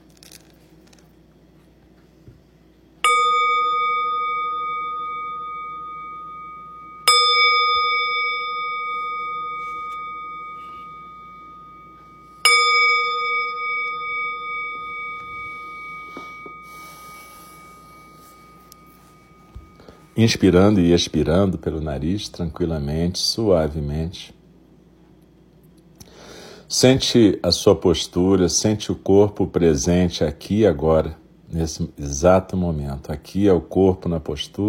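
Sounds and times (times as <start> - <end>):
meditation bell struck to begin a Buddhist meditation: 3.0 - 21.6
speech: 20.2 - 24.4, 26.7 - 34.6.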